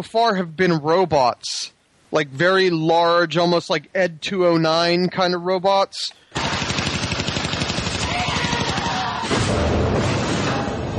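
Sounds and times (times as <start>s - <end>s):
speech: 0.0s - 6.6s
Tesla grenade EMP blast in a video game: 6.3s - 10.9s.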